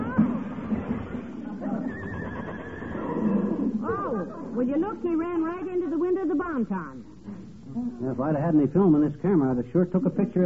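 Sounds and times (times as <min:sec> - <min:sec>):
runaway horse neighing: 0:01.2 - 0:04.5
speech: 0:04.6 - 0:07.1, 0:07.7 - 0:10.4.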